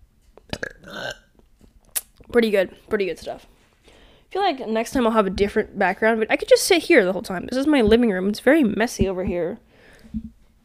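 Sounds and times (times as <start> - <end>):
person burping: 0.5 - 1.3
speech: 2.3 - 3.5, 4.3 - 10.3.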